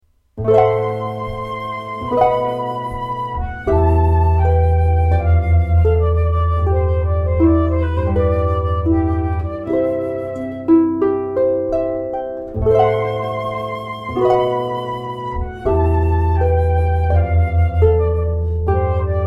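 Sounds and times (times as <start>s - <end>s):
flute: 0.4s - 19.2s
harp: 0.4s - 19.2s.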